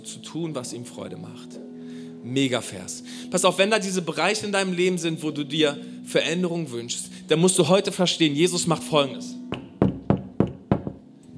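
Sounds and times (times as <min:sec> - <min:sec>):
speech: 0:00.3 - 0:09.4
firm knocks on a wooden door: 0:09.5 - 0:11.0.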